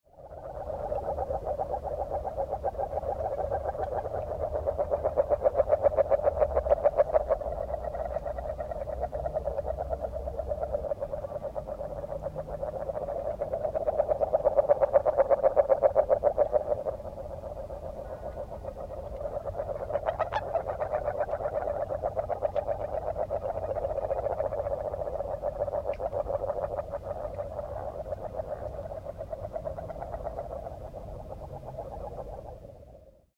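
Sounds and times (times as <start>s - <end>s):
agile frog calling: 0.1s - 33.3s.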